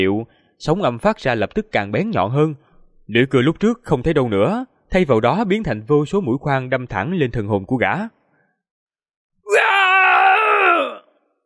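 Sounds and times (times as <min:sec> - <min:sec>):
speech: 0:00.0 - 0:08.2
fierce scream: 0:09.5 - 0:11.1.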